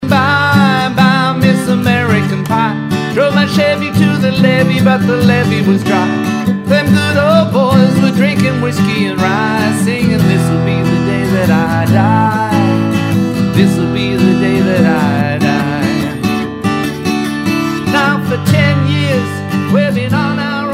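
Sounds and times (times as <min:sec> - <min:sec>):
acoustic guitar: 0:00.0 - 0:20.7.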